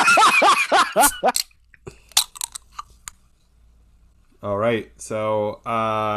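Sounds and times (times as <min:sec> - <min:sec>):
laughter: 0:00.0 - 0:01.4
grapefruit juniper sparkling water can cracked open: 0:02.1 - 0:02.8
speech: 0:04.4 - 0:06.1.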